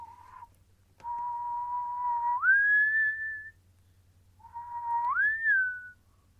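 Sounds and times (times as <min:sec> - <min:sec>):
person whistling a slow eerie tune: 0:01.0 - 0:03.6, 0:04.4 - 0:06.0.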